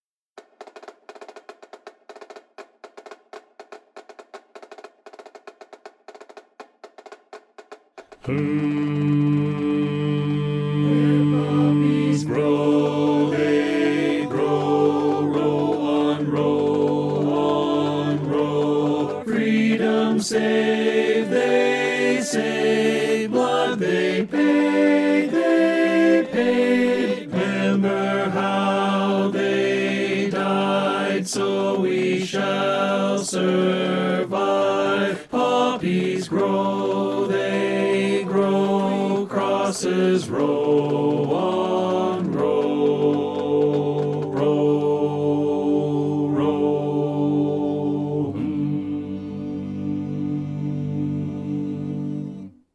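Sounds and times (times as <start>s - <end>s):
baritone voice singing: 8.2s - 52.5s.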